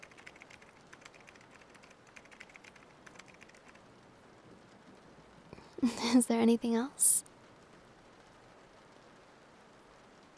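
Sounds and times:
typing on a computer keyboard: 0.0 - 3.8
speech: 5.8 - 7.2.

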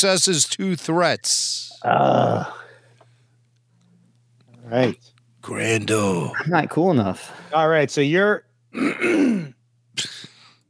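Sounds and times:
speech: 0.0 - 2.6, 4.7 - 10.1
throat clearing into the microphone: 8.8 - 10.4.

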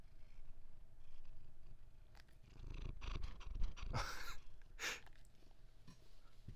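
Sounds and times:
cat purring: 0.0 - 4.7.

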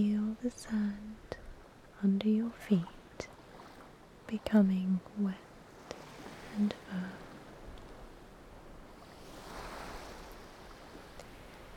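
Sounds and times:
speech: 0.0 - 1.1, 2.0 - 3.3, 4.3 - 5.4, 6.6 - 7.2
ocean waves washing over sand: 2.7 - 4.3, 5.1 - 11.7.

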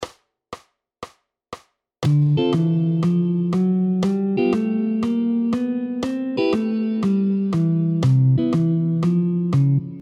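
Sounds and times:
bass: 2.0 - 10.0
chords: 2.0 - 10.0.

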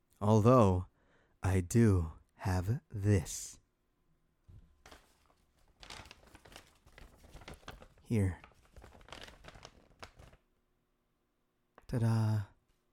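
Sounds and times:
speech: 0.2 - 3.6, 8.1 - 8.4, 11.9 - 12.5
paper bag holding a cat plushie crinkling as it is handled: 4.8 - 10.4.

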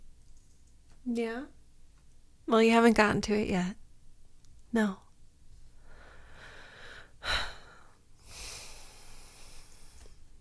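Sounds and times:
speech: 1.0 - 1.6, 2.5 - 3.8, 4.7 - 5.0
heavy breathing with snort-like exhale: 5.8 - 10.3.

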